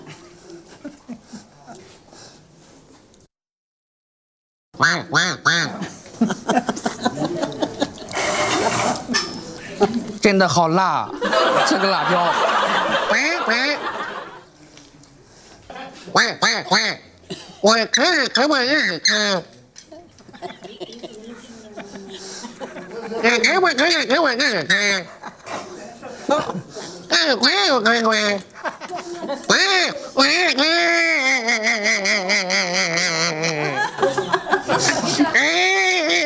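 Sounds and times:
laughter: 0.0 - 2.0, 5.8 - 10.2, 11.1 - 14.5, 19.9 - 36.2
speech: 4.8 - 7.3, 9.8 - 13.7, 16.2 - 17.0, 17.6 - 19.5, 23.2 - 25.2, 26.3 - 26.6, 27.2 - 28.5, 30.2 - 33.1
person imitating a rural hen clucking as it lays an egg: 29.5 - 33.9, 35.2 - 36.2.

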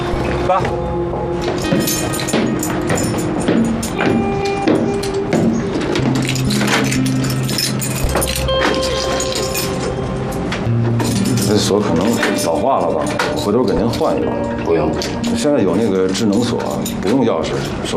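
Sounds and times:
speech: 0.5 - 1.0, 12.7 - 17.9
keys jangling and scraping in an old metal door lock: 1.4 - 17.8.

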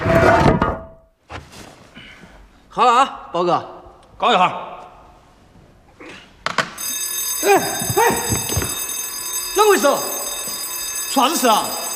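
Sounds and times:
speech: 2.8 - 4.7, 7.4 - 8.2, 9.8 - 10.2, 11.1 - 11.8
high-sensitivity sound-activated alarm ringing: 6.8 - 11.9.

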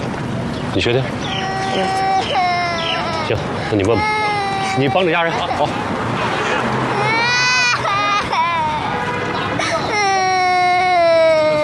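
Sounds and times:
speech: 0.7 - 2.0, 3.3 - 4.2, 4.8 - 6.4
small child crying in loud high wails: 1.3 - 5.8, 6.9 - 9.0, 9.6 - 11.6.

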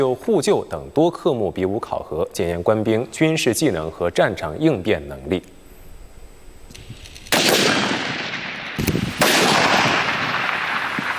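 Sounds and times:
speech: 0.0 - 5.6
sniper rifle gunfire during army live-fire sniper assessment: 7.3 - 11.1.

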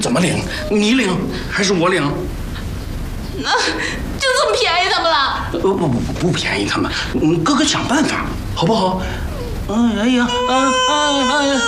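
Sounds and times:
speech: 0.0 - 2.4, 3.4 - 11.6
person crying out loud in a tearful wail: 9.3 - 11.6.

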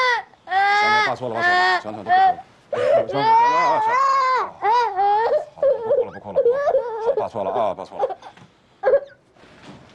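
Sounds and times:
child crying and wailing: 0.0 - 7.2
speech: 1.1 - 4.2, 6.2 - 8.4.

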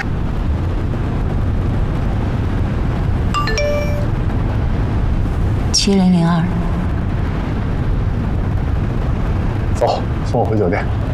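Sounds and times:
steady low rumble of car interior road noise: 0.0 - 11.1
mobile phone electronic ringtone burst: 3.4 - 4.2
speech: 5.8 - 6.7, 9.8 - 11.1.

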